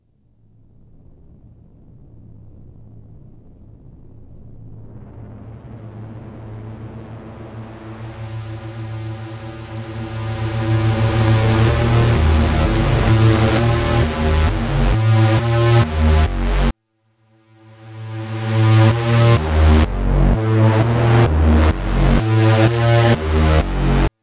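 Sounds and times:
synth pads: 4.8 - 16.7, 17.5 - 24.1
drum and bass music: 5.6 - 16.7, 17.8 - 24.1.

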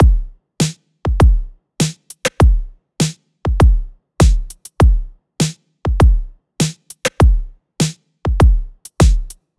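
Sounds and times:
EDM dance drum loop at 100 BPM: 0.0 - 0.3, 1.1 - 2.7, 3.5 - 5.1, 5.9 - 7.5, 8.3 - 9.4.

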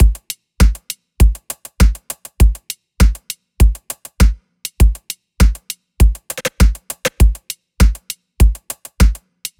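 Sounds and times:
100 BPM EDM dance drum loop: 0.0 - 9.2.

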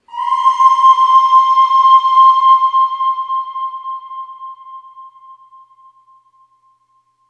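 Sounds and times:
voice singing ooh on C5 with long reverb: 0.0 - 5.4.

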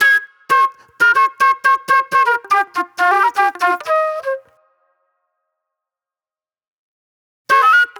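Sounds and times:
soul flute music: 0.0 - 5.0, 7.5 - 7.9.

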